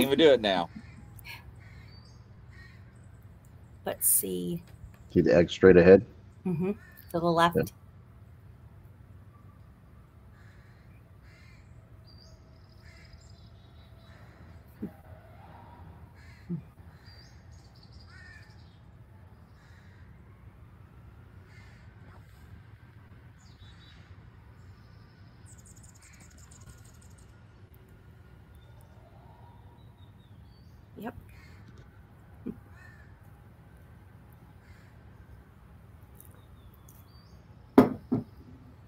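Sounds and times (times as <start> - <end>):
speech: 0.0 - 1.4, 3.9 - 7.8
young crows cawing in rasping bursts: 0.4 - 3.0, 10.3 - 11.8, 12.7 - 18.8, 19.4 - 20.2, 21.4 - 22.2, 31.3 - 31.8, 32.5 - 33.3, 34.6 - 35.2.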